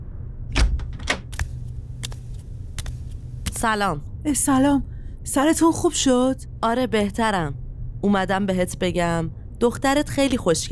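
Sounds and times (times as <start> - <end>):
low quiet hum: 0.0 - 10.7
door latch clicks and knocks as a door opens in a room: 0.5 - 1.3
speech: 3.6 - 10.7.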